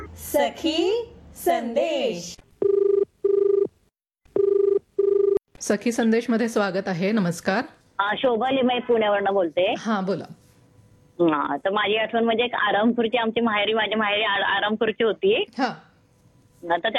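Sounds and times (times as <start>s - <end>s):
speech: 0.5s - 2.4s, 5.7s - 10.4s, 11.2s - 15.9s, 16.6s - 16.9s
telephone ringing for an incoming call: 2.6s - 3.7s, 4.3s - 5.4s.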